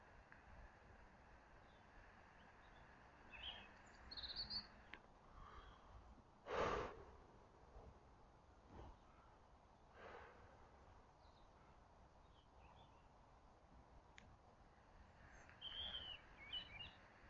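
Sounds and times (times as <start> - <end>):
soft breaths: 0.0 - 12.8, 14.5 - 17.2
birds chirping outdoors: 1.3 - 6.0, 11.2 - 13.2, 14.7 - 17.2.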